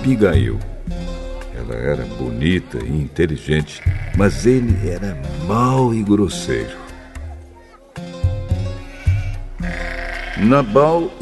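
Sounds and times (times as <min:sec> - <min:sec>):
speech: 0:00.0 - 0:00.8, 0:01.6 - 0:06.8, 0:10.4 - 0:11.2
sheep bleating: 0:03.6 - 0:05.2, 0:08.7 - 0:11.2.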